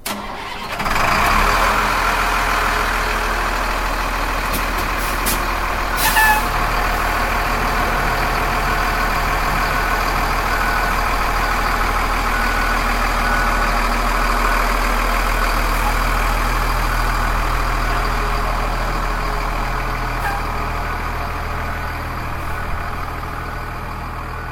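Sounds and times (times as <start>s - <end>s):
Freightliner fire tanker truck engine starting and idling: 0.0s - 24.5s.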